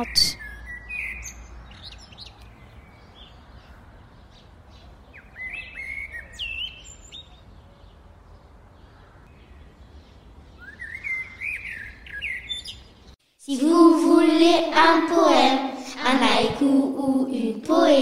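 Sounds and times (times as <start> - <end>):
speech: 0.0 - 0.4, 13.5 - 18.0
birds singing outdoors: 0.0 - 13.2.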